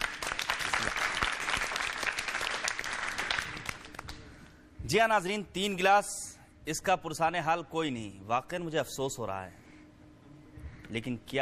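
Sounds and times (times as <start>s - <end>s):
crowd applause: 0.0s - 4.1s
speech: 4.9s - 9.6s, 10.9s - 11.4s.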